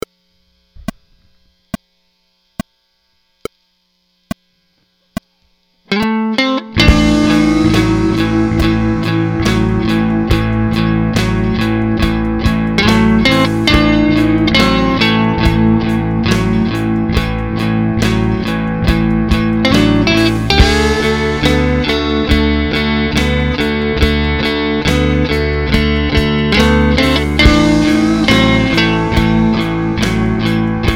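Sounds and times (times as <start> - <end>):
12 bar blues in A: 6.8 - 30.9.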